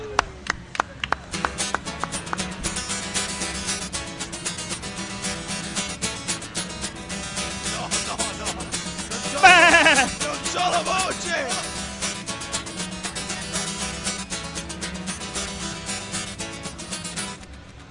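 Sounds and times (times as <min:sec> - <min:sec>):
dense steady wash of sound: 0:00.0 - 0:17.8
laughter: 0:07.4 - 0:11.7, 0:13.2 - 0:13.9
sheep bleating: 0:09.2 - 0:11.6.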